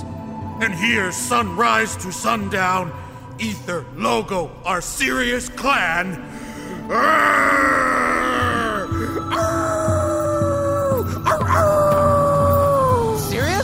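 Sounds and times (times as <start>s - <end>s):
low rhythmic thumping: 0.0s - 13.6s
speech: 0.6s - 8.0s
person howling at the sunset: 6.8s - 13.6s.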